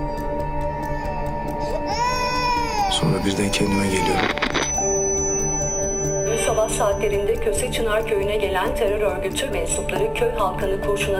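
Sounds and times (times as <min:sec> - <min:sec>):
newborn baby crying: 0:00.0 - 0:07.1
faint rhythmic ticking: 0:00.0 - 0:11.1
speech: 0:03.0 - 0:04.6, 0:06.6 - 0:11.1.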